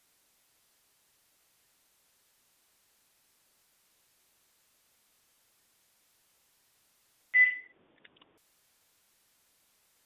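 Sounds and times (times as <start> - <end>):
device low-battery beep: 7.4 - 7.7.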